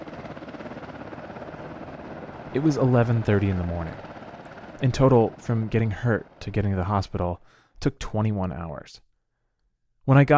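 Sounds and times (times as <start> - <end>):
helicopter rotor chopping with a loud roar: 0.0 - 7.4
speech: 2.5 - 4.1, 4.8 - 9.1, 10.1 - 10.3.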